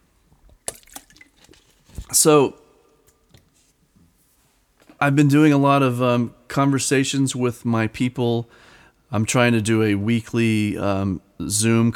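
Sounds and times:
person sipping a drink of water: 0:00.4 - 0:02.3
speech: 0:02.1 - 0:02.6, 0:05.0 - 0:11.9.

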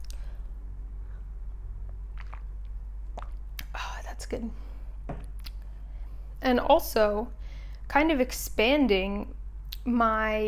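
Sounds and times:
steady low hum: 0:00.0 - 0:10.4
person sipping water: 0:01.8 - 0:03.7
swallow: 0:01.9 - 0:03.7
speech: 0:04.2 - 0:05.2, 0:06.4 - 0:10.4.

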